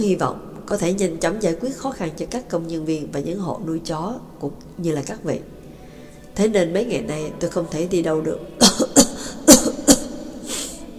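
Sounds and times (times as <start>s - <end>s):
speech: 0.0s - 5.5s, 6.4s - 9.6s
man's softer breathy exhale: 5.7s - 6.4s, 9.2s - 9.4s
man coughing in a short fit: 8.6s - 10.8s.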